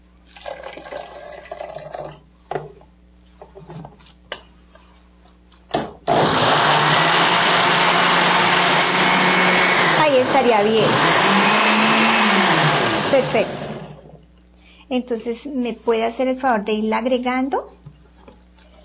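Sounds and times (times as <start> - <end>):
blender liquefying corn with water: 6.1 - 14.1
speech: 10.6 - 10.9, 13.4 - 13.7, 14.9 - 17.8.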